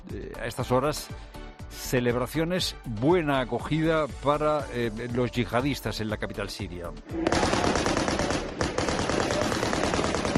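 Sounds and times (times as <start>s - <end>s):
speech: 0.1s - 7.9s
celebratory automatic gunfire outdoors in a street: 7.2s - 10.3s.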